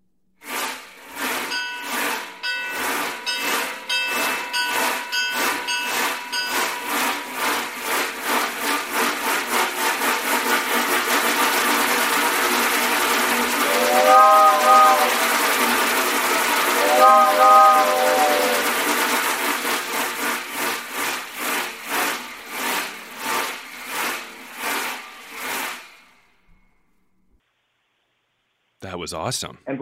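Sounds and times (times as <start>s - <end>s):
hand-worked silent-film sound-effect device mimicking a passing train: 0.4s - 26.2s
whistle-like toots of a sound-effect device: 13.4s - 19.1s
speech: 29.1s - 29.8s.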